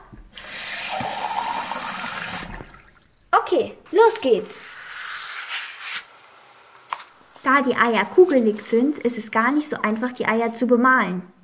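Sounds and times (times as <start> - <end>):
tap water pouring into a cup or jar: 0.4 - 3.2
speech: 3.5 - 4.7, 7.5 - 11.4.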